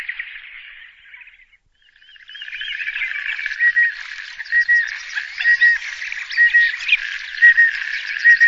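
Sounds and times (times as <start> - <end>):
White-headed duck calling: 2.2 - 8.4.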